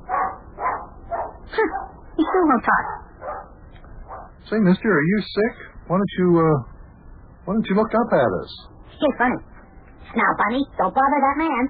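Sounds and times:
dog barking: 0:00.0 - 0:04.4
speech: 0:02.4 - 0:03.0, 0:04.5 - 0:06.7, 0:07.4 - 0:11.6.

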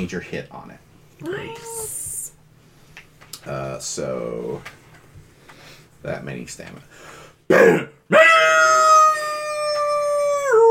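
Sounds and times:
speech: 0:00.0 - 0:01.9, 0:03.4 - 0:04.8, 0:06.0 - 0:07.9
werewolf howl: 0:08.1 - 0:10.6.

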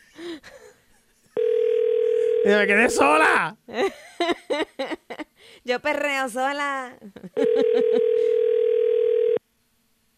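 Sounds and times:
telephone ringback tone while a call is being placed: 0:01.4 - 0:02.7, 0:07.4 - 0:09.4
speech: 0:02.4 - 0:05.0, 0:05.6 - 0:08.4.

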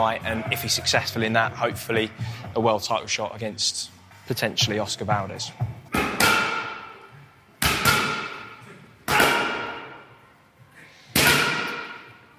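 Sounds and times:
speech: 0:00.0 - 0:05.7
boxer hitting pads in a boxing ring: 0:05.9 - 0:06.8, 0:07.6 - 0:08.5, 0:09.1 - 0:09.9, 0:11.2 - 0:12.0.

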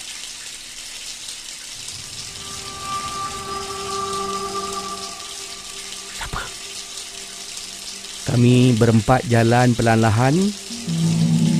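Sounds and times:
shower water gushing with splashing: 0:00.0 - 0:11.5
faint tonal hums and whines: 0:01.8 - 0:08.8
speech: 0:08.4 - 0:11.0.

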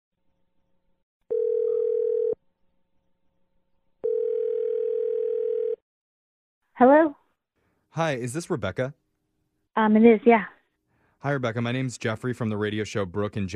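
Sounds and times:
telephone ringback tones: 0:01.3 - 0:02.4, 0:04.0 - 0:05.8
speech: 0:06.8 - 0:07.2, 0:08.0 - 0:09.0, 0:09.8 - 0:10.6, 0:11.2 - 0:13.5.

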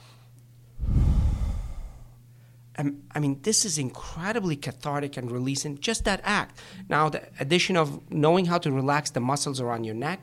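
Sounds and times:
faint steady hum: 0:00.0 - 0:10.2
deep breath in through the nose and out through the mouth as a relaxation exercise: 0:00.8 - 0:02.6
speech: 0:02.8 - 0:10.2.

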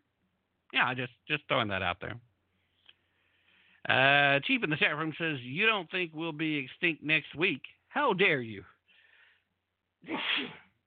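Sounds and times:
speech: 0:00.7 - 0:02.3, 0:03.8 - 0:08.7, 0:10.0 - 0:10.6
person sneezing: 0:10.0 - 0:10.8.

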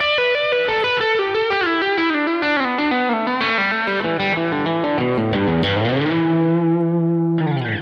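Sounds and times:
distorted electric guitar playing a descending E minor pentatonic legato run: 0:00.0 - 0:07.7.

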